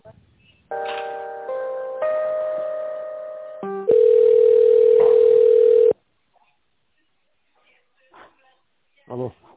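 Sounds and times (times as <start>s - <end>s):
phone line electronic ringing tones during call transfer: 3.9s - 6.0s.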